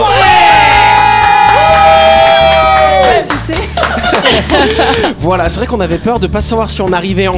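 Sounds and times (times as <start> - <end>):
two people shouting and cheering in a radio studio: 0.0 - 3.5
laughter: 3.5 - 5.2
speech: 5.3 - 7.3.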